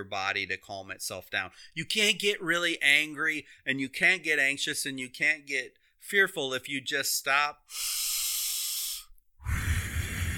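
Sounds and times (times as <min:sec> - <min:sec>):
speech: 0:00.0 - 0:08.2
deep breath in and out: 0:07.7 - 0:10.3.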